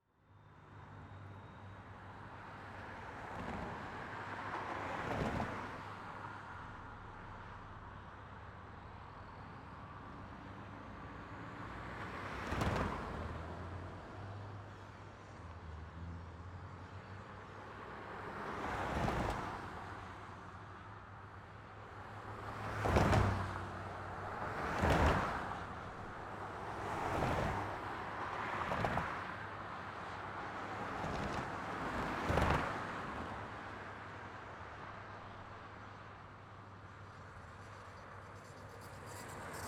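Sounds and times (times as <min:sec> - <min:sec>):
traffic over railroad tracks: 0:00.1 - 0:39.6.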